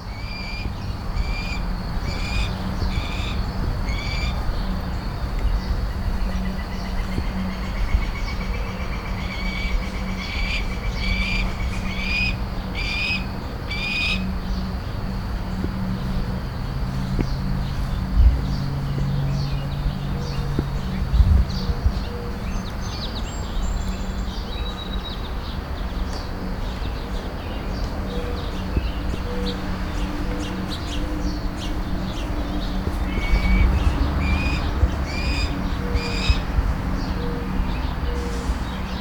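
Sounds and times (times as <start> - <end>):
steady outdoor hum of traffic: 0.0 - 38.9
young red-tailed hawks calling with high squealing cries in a neighborhood: 9.2 - 14.3, 32.9 - 36.5.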